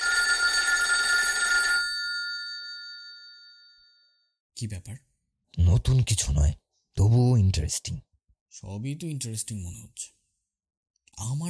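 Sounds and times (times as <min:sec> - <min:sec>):
telephone bell ringing: 0:00.0 - 0:04.4
speech: 0:04.6 - 0:10.2, 0:11.2 - 0:11.4.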